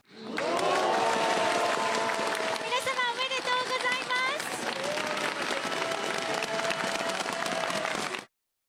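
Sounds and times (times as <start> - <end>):
large crowd clapping at public viewing: 0.0 - 8.3.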